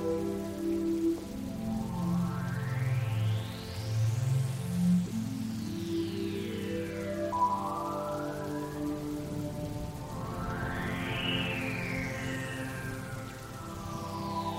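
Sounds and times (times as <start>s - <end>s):
dense rain pattering across a surface during outdoor concert: 0.0s - 14.5s.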